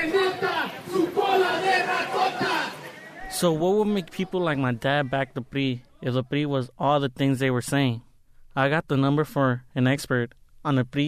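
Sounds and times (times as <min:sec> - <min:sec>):
large protest crowd chanting and shouting outdoors in downtown Los Angeles opposing the PRI: 0:00.0 - 0:06.3
speech: 0:03.3 - 0:11.0.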